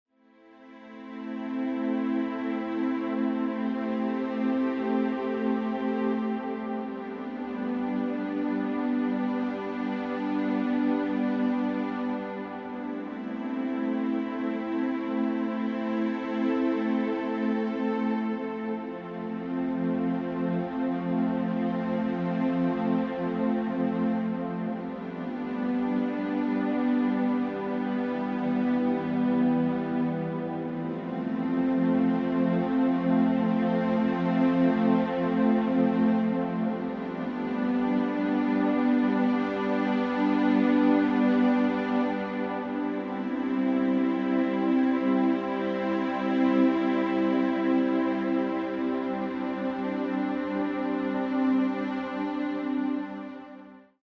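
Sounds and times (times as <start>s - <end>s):
neutral relaxing synth pad loop: 0.2s - 54.0s.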